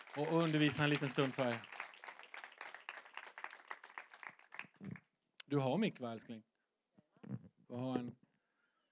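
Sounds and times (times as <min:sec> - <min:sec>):
crowd clapping steadily: 0:00.0 - 0:05.0
speech: 0:00.2 - 0:01.8, 0:05.5 - 0:06.5, 0:07.7 - 0:08.2.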